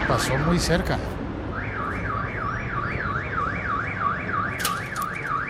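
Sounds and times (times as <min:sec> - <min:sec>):
speech: 0:00.2 - 0:01.2
alarm of a car parked on the street wailing: 0:01.5 - 0:05.4.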